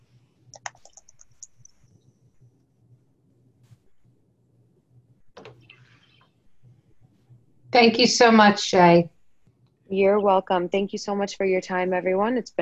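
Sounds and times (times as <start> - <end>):
low steady hum: 0.0 - 12.6
typing an email on a computer keyboard: 0.5 - 1.8, 5.4 - 5.7
speech: 7.8 - 9.1, 9.9 - 12.6.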